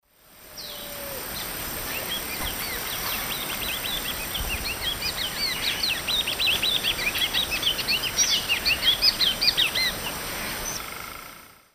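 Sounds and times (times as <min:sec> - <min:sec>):
Oryzoborus crassirostris song in the Eastern Lowlands of South America: 0:00.6 - 0:11.6.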